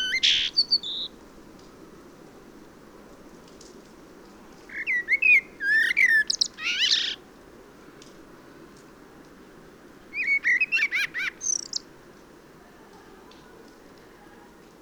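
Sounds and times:
common blackbird Turdus merula song: 0.0 - 1.2, 4.7 - 7.2, 10.2 - 11.9.

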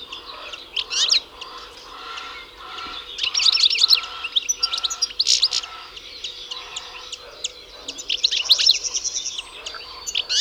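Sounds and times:
European goldfinch Carduelis carduelis calls with tinkling twitters: 0.0 - 10.3.

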